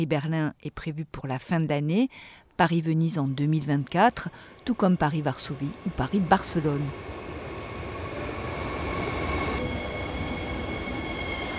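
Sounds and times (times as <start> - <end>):
speech: 0.0 - 7.1
night train rail cars rumbling arriving at a station in Berlin: 3.8 - 11.5
night train wheels squealing arriving at a station in Berlin: 4.7 - 11.5.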